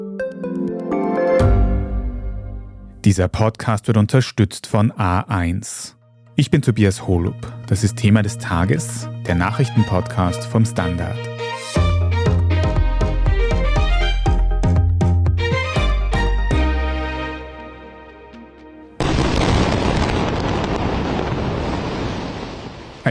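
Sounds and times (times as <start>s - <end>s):
music: 0.0s - 19.1s
speech: 3.0s - 11.5s
huge explosion: 19.0s - 23.0s.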